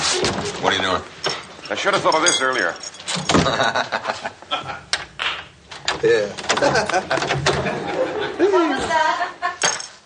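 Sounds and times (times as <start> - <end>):
speech: 0.1 - 4.9, 6.0 - 9.4
door rattling and thudding as it is jammed shut: 3.1 - 3.7, 5.8 - 7.9
laughter: 3.4 - 4.9, 6.5 - 9.6.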